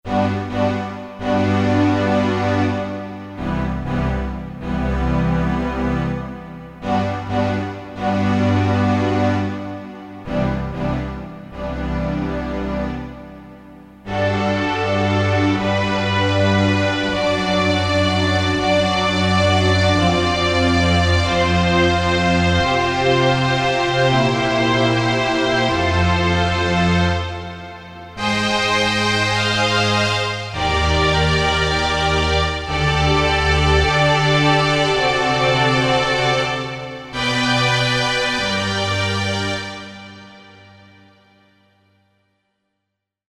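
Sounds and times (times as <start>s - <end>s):
Korg DSS-1 synthesized strings: 0.1s - 41.3s.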